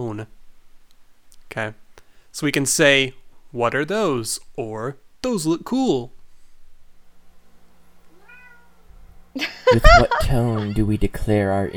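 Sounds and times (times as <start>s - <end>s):
speech: 0.0s - 0.4s, 1.5s - 6.2s, 9.4s - 11.7s
low steady hum: 0.0s - 11.7s
single cat meow: 8.1s - 8.9s
laughter: 9.4s - 11.0s.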